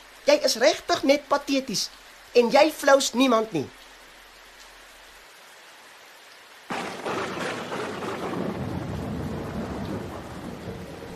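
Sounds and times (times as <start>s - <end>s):
heavy rain pouring: 0.0s - 11.1s
speech: 0.3s - 3.8s
thunder rumbling: 6.7s - 11.1s.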